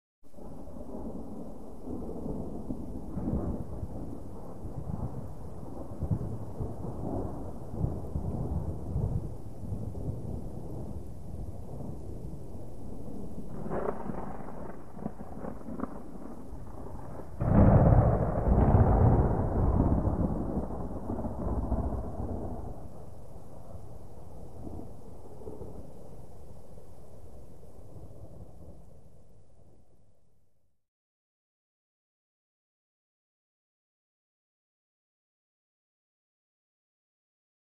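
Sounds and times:
distant gentle thunder rumbling: 0.4s - 26.3s.

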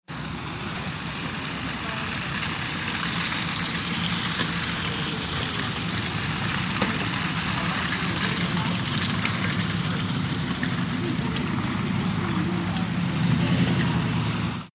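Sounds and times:
traffic on wet road outdoors: 0.0s - 14.7s.

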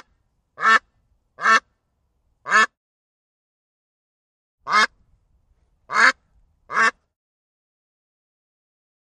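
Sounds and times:
duck quacking: 0.0s - 1.7s, 2.5s - 2.8s, 4.7s - 5.0s, 5.9s - 7.0s.

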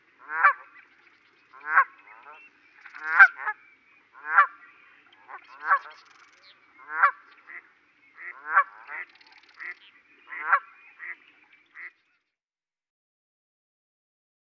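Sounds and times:
goose honking: 0.2s - 0.7s, 1.6s - 2.4s, 3.0s - 3.6s, 4.2s - 4.6s, 5.3s - 6.0s, 6.8s - 7.6s, 8.2s - 11.2s.

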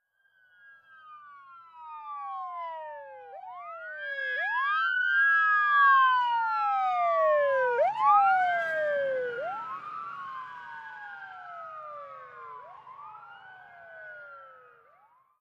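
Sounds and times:
ambulance passing by at medium distance: 0.0s - 15.4s.

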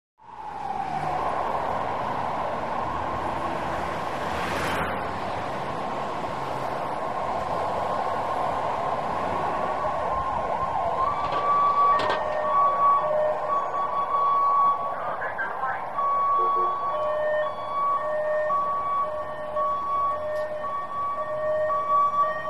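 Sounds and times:
ambulance high-low siren passing: 0.2s - 22.4s
traffic: 0.2s - 22.4s
voice over ambulance loudspeaker: 14.8s - 16.8s.

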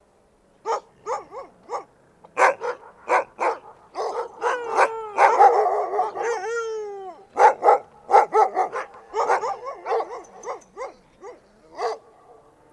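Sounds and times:
dog barking: 0.6s - 6.4s, 7.4s - 12.2s
dog howling: 4.0s - 12.5s.

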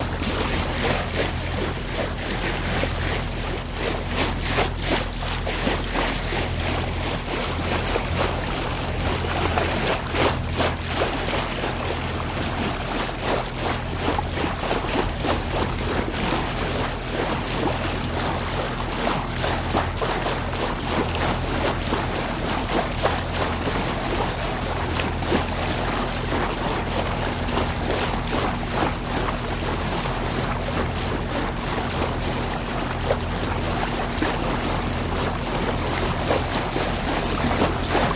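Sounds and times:
light steady bow wash: 0.0s - 38.1s.

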